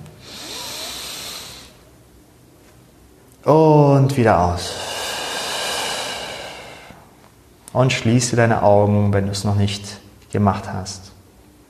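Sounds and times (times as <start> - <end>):
slow deep inhalation: 0.2 - 1.9, 4.7 - 7.1
speech: 3.4 - 4.8, 7.8 - 11.1.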